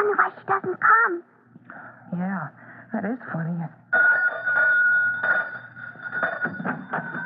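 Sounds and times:
speech: 0.0 - 1.4, 2.1 - 4.2
pull doorbell ringing: 4.0 - 7.2.

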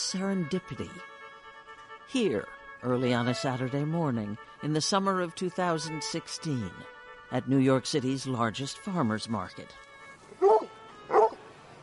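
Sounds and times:
speech: 0.1 - 1.1, 2.1 - 10.4
bull terrier barking: 10.4 - 11.4.

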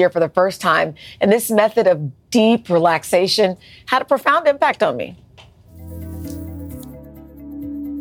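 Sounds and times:
speech: 0.0 - 5.2
gong resonating: 5.7 - 7.3.

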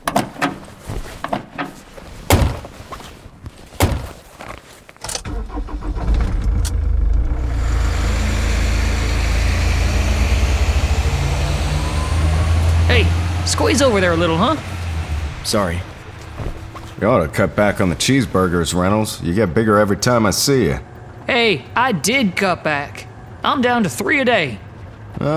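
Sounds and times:
car doors thunking and slamming: 2.3 - 2.7, 3.8 - 4.2
truck engine starting and driving off: 5.2 - 25.1
speech: 13.6 - 14.7, 15.5 - 15.9, 17.0 - 24.6, 25.2 - 25.3.

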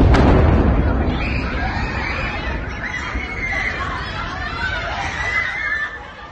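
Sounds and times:
missile explosion: 0.0 - 4.5
crowd of schoolchildren screaming and shouting in panic: 0.6 - 6.2.

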